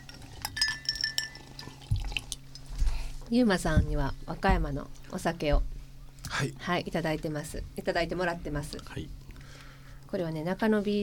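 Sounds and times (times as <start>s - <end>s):
glasses clinking in a toast at a restaurant: 0.0s - 2.7s
speech: 3.3s - 5.7s, 6.4s - 9.2s, 10.1s - 11.0s
soft dull knock: 3.6s - 4.8s.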